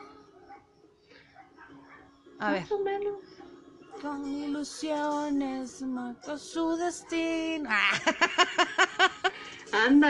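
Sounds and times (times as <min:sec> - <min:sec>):
faint dogs whining and yelping: 0:00.0 - 0:02.2
speech: 0:02.4 - 0:03.4, 0:04.0 - 0:10.0
laughter: 0:07.7 - 0:09.8.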